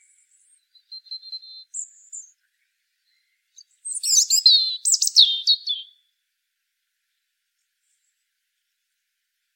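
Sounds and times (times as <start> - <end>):
European robin Erithacus rubecula song: 0.0 - 6.1.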